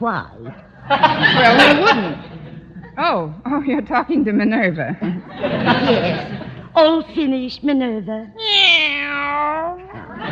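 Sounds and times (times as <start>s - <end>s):
speech: 0.0s - 2.4s, 3.0s - 8.6s
laughter: 0.6s - 3.0s, 5.0s - 6.8s, 9.9s - 10.3s
cat meowing: 8.4s - 9.6s.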